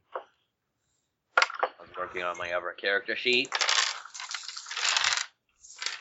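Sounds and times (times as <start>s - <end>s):
speech: 2.0s - 3.7s
dice rattling across a table: 3.4s - 5.9s.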